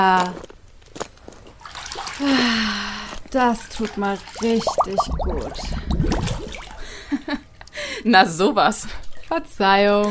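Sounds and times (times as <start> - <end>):
speech: 0.0 - 0.5, 2.2 - 6.4, 8.0 - 10.0
hot water splashing and pouring into a bathing tub: 3.5 - 7.0.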